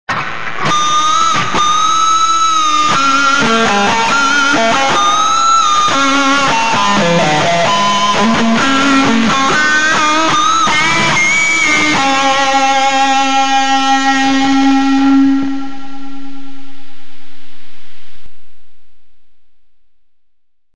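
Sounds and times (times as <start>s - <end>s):
harmonics: 0.1s - 17.3s.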